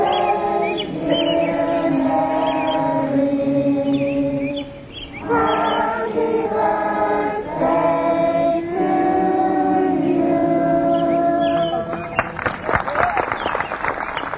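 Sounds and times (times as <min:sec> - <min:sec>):
sustained tones: 0:00.0 - 0:12.2
several thousand pilgrims' voices overlapping in a rural meadow: 0:00.0 - 0:12.4
pilgrims clapping and cheering in a rural meadow: 0:11.7 - 0:14.3.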